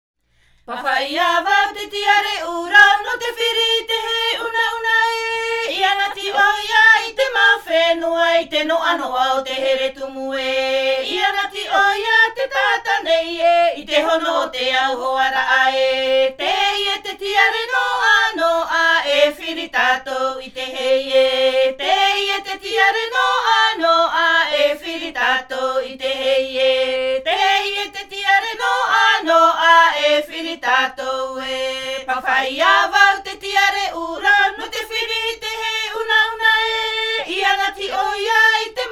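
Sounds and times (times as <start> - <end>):
Tahitian himene tarava choir singing: 0.7 - 38.9.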